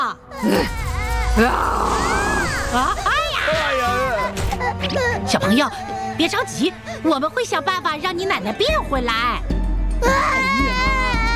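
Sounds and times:
speech: 0:00.1 - 0:00.8, 0:01.4 - 0:02.1, 0:02.7 - 0:03.6, 0:04.6 - 0:10.6
child crying in a loud wavering wail with sobs: 0:00.3 - 0:05.7, 0:10.0 - 0:11.3.

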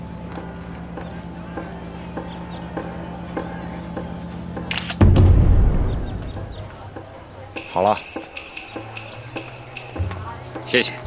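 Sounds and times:
camera shutter firing to take a photo: 0:04.7 - 0:06.3
low rumbling noise: 0:05.0 - 0:07.4
speech: 0:07.8 - 0:08.1, 0:10.7 - 0:11.0.

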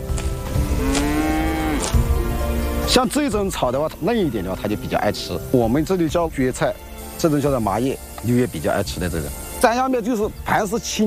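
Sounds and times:
herd of small yellow cattle mooing on mountain meadows: 0:00.6 - 0:02.0
speech: 0:02.9 - 0:11.0.

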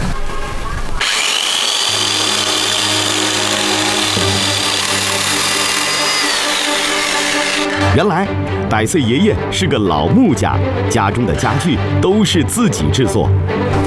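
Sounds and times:
electric saw running: 0:01.0 - 0:08.0
speech: 0:08.0 - 0:13.8.

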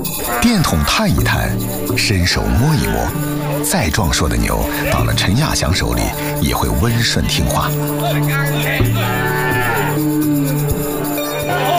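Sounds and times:
local native yellow cow mooing in Shen town China: 0:00.0 - 0:03.7, 0:08.8 - 0:11.7
speech: 0:00.3 - 0:10.3.

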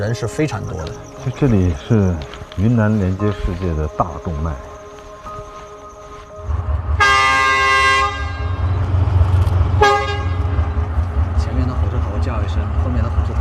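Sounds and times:
speech: 0:00.0 - 0:04.7
low rumble of an idling locomotive: 0:00.2 - 0:13.3
train horn signalling before departure at Zhichun station in Yunnan, China: 0:06.4 - 0:11.2.

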